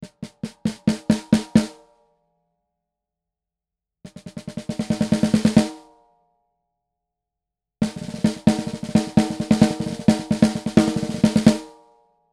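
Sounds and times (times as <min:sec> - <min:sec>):
snare drum recorded with clip-on microphone: 0:00.0 - 0:01.8, 0:04.1 - 0:05.9, 0:07.8 - 0:11.8.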